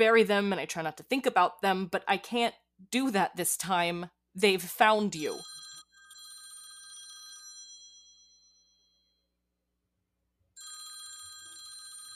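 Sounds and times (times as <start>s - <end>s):
speech: 0.0s - 5.6s
old-style telephone bell ringing: 5.2s - 9.4s, 10.6s - 12.1s.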